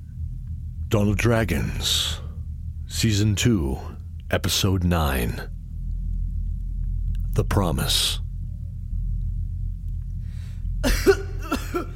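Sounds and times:
steady low rumble: 0.0s - 11.9s
speech: 0.9s - 2.2s, 2.9s - 5.6s, 7.4s - 8.2s
man coughing: 10.8s - 11.9s.

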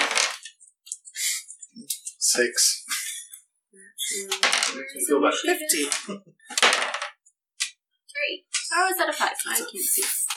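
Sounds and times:
dice clattering across a hard tabletop in a tabletop game: 0.0s - 0.6s, 4.4s - 4.8s, 5.7s - 7.2s
speech: 2.3s - 2.8s, 4.1s - 6.6s, 8.3s - 10.2s.

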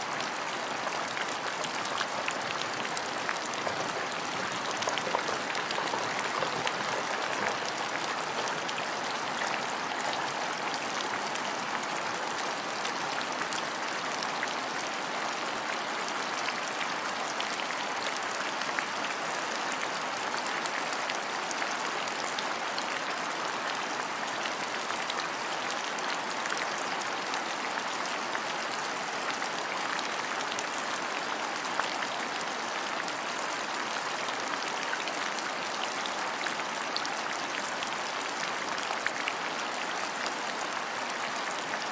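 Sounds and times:
rain: 0.0s - 41.9s.

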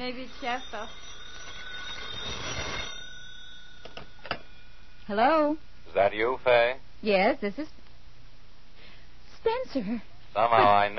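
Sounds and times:
speech: 0.0s - 1.2s, 5.1s - 7.8s, 9.4s - 10.9s
telephone bell ringing with a shrill tone: 0.0s - 4.9s.

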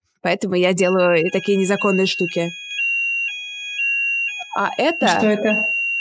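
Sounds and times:
speech: 0.2s - 2.6s, 4.6s - 5.8s
fire alarm going off: 0.5s - 5.9s.

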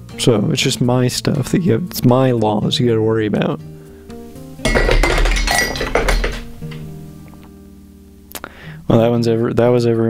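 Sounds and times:
speech: 0.2s - 3.8s, 9.0s - 10.0s
glass of water knocked over on a desk: 4.6s - 6.9s.

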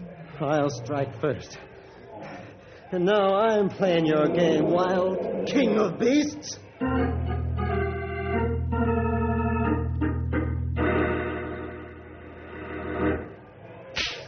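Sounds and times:
speech: 0.4s - 1.7s, 2.9s - 7.2s
sustained harmonic tonal bed: 3.8s - 13.2s
whip crack: 14.0s - 14.2s.

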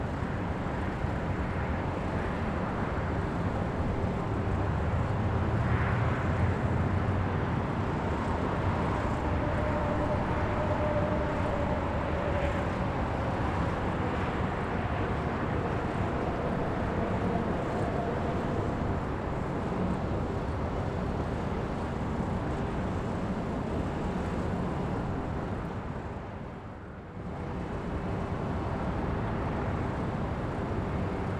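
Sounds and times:
dense steady roar of city traffic heard from a rooftop: 0.0s - 31.3s.

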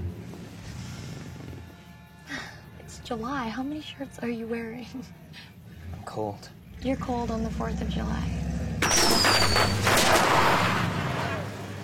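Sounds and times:
speech: 3.0s - 5.2s, 6.2s - 8.4s
high whistling streak: 8.8s - 9.8s
firecrackers set off as a prank on the Fourth of July: 8.8s - 11.3s.

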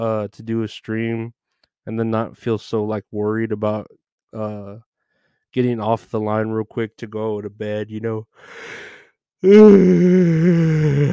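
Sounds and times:
speech: 0.0s - 4.9s, 5.5s - 11.1s
long loud voiced yawn close to the microphone: 8.5s - 11.1s.

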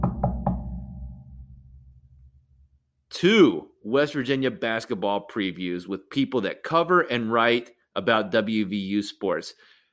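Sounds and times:
knocks on wood: 0.0s - 0.8s
speech: 3.2s - 9.7s.

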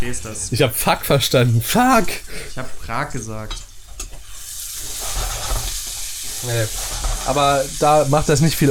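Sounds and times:
speech: 0.0s - 3.7s, 6.4s - 8.7s
food sizzling in a hot pan: 3.1s - 8.7s
scraping and clattering of food being stirred in a pan: 3.5s - 7.8s.

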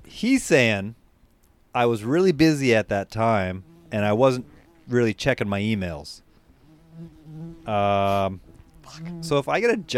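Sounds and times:
speech: 0.1s - 1.0s, 1.8s - 6.2s, 7.0s - 9.9s
bumblebee buzzing around head: 3.2s - 9.9s.

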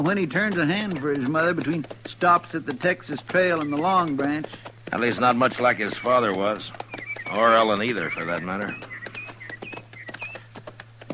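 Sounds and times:
speech: 0.0s - 8.9s
horse hooves clip-clopping: 0.0s - 11.1s
faint bird chirps: 5.0s - 10.6s.

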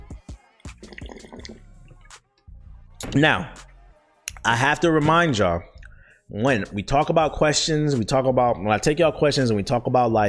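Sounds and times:
person slurping and gulping water: 0.7s - 2.1s
speech: 3.1s - 3.6s, 4.4s - 5.7s, 6.3s - 10.2s.

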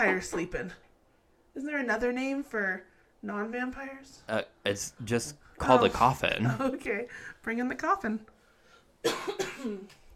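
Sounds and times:
speech: 0.0s - 0.9s, 1.6s - 8.3s, 9.0s - 10.0s
person coughing: 9.0s - 9.9s.

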